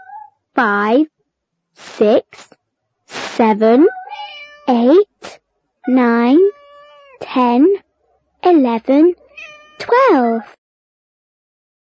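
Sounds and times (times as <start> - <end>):
cats meowing: 0.0 - 0.3, 3.8 - 4.7, 6.3 - 7.2, 9.2 - 10.5
speech: 0.6 - 1.1, 1.8 - 4.0, 4.7 - 5.1, 5.8 - 6.5, 7.4 - 7.8, 8.4 - 9.2, 9.8 - 10.6.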